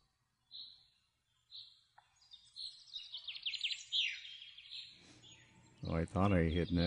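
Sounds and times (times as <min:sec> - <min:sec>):
bright trilling bird chirps in a forest: 0:00.0 - 0:06.8
whistled bird notes in a quiet forest: 0:01.5 - 0:06.8
speech: 0:05.9 - 0:06.8.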